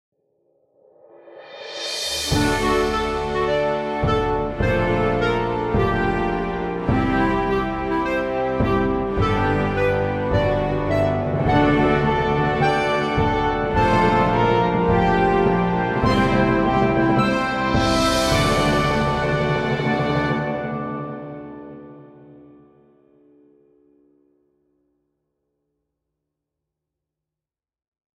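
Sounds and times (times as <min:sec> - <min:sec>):
symphonic orchestral music: 0:02.1 - 0:23.0.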